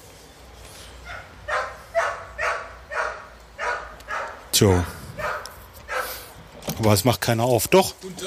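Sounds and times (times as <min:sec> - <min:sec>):
dog barking: 0:01.1 - 0:06.3
speech: 0:04.6 - 0:05.0, 0:06.8 - 0:08.2.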